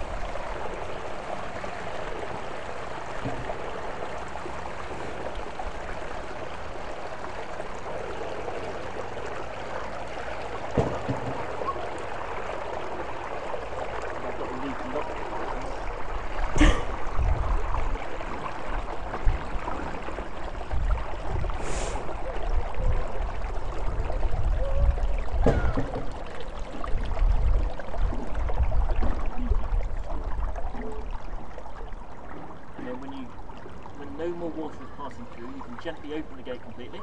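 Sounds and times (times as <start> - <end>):
water rushing through an opened canal lock paddle: 0.0 - 37.0
sharp knocks and clunks: 3.2 - 3.6, 10.7 - 11.5.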